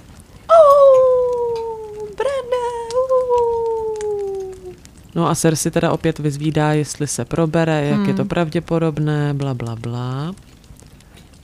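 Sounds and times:
person imitating a wolf howl: 0.5 - 4.8
speech: 5.2 - 10.5.

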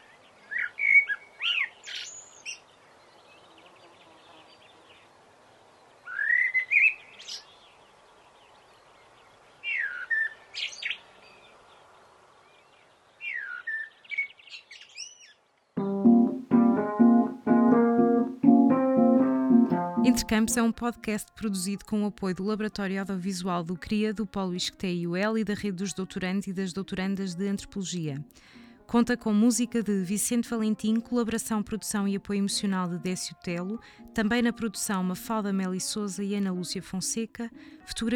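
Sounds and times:
small birds chirping and twittering in a garden: 0.0 - 5.2, 5.8 - 15.7
tonal harmonic sound: 15.8 - 20.8
speech: 20.2 - 38.1.

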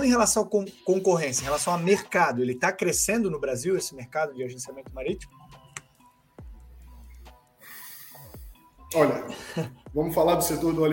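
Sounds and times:
speech: 0.0 - 5.4, 8.9 - 10.9
person breathing with snort-like rumble: 6.8 - 8.7, 9.3 - 9.8.

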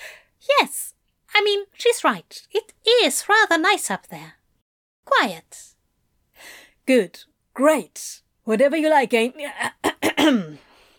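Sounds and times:
speech: 1.8 - 4.4, 5.1 - 5.7, 6.4 - 10.6
person coughing: 9.8 - 10.6.

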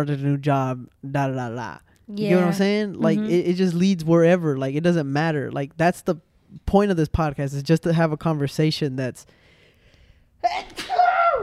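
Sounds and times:
speech: 0.0 - 9.4, 10.4 - 11.4
person sneezing: 10.4 - 11.2.

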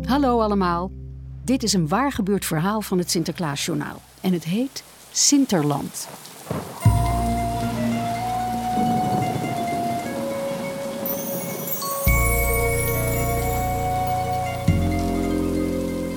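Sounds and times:
speech: 0.1 - 6.7
rain beating against windows in strong wind: 3.2 - 16.1.

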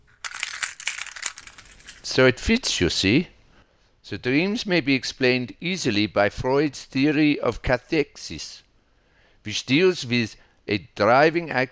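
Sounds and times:
keys jingling in hand: 0.0 - 2.2
speech: 2.1 - 3.4, 4.1 - 8.6, 9.4 - 11.7.

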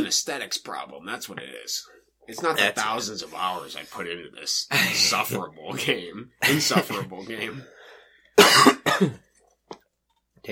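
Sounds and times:
speech: 0.0 - 7.8, 8.4 - 9.2
person coughing harshly: 8.4 - 9.2.

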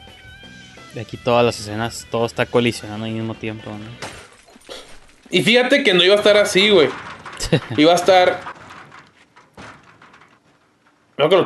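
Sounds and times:
speech: 0.9 - 4.2, 5.3 - 8.5, 11.2 - 11.4
sliding door panel rattling and scraping along its track: 4.2 - 11.4
sliding door banging hard on its rail: 5.4 - 11.4
laughter: 7.4 - 8.0.

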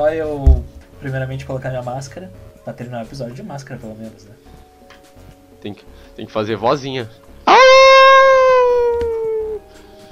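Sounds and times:
speech: 0.0 - 4.7, 5.6 - 7.8
person imitating a wolf howl: 7.5 - 9.6.

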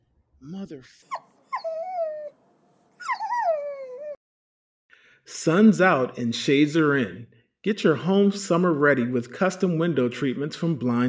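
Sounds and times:
speech: 0.4 - 1.2, 5.3 - 11.0
dog howling in wavering cries: 1.0 - 2.3, 3.0 - 4.2.

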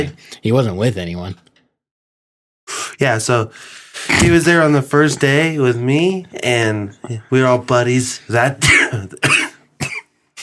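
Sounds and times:
speech: 0.0 - 1.5, 3.0 - 9.3
person coughing: 8.6 - 10.4.

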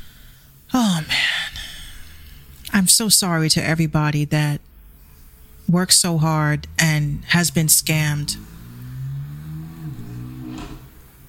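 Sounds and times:
speech: 2.8 - 4.7, 5.7 - 8.6
car passing by outside: 5.2 - 11.2.

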